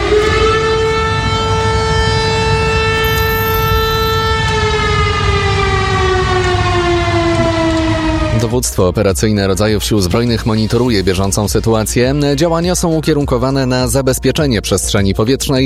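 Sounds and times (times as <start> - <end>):
air raid warning siren wailing: 0.0 - 8.9
constant low rumble: 0.0 - 15.1
speech: 8.6 - 15.6.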